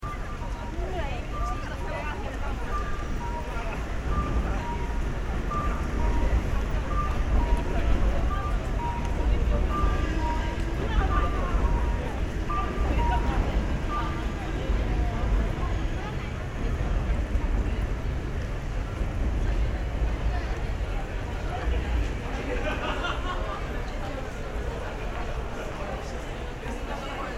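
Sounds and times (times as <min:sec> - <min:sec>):
crowd at a large busy pedestrian crossing: 0:00.0 - 0:27.3
laughter: 0:21.7 - 0:25.9.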